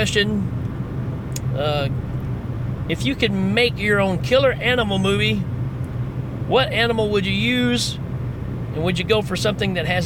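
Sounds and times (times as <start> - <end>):
speech: 0.0 - 0.6, 1.5 - 2.1, 2.9 - 5.5, 6.5 - 8.0, 8.8 - 10.0
road rumble from inside a moving car: 0.0 - 10.0.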